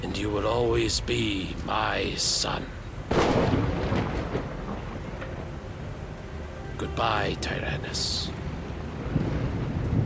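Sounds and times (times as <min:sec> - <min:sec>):
speech: 0:00.0 - 0:02.8, 0:06.9 - 0:08.4
rain: 0:02.7 - 0:10.0
thunder rumbling: 0:03.1 - 0:06.5, 0:08.4 - 0:10.0.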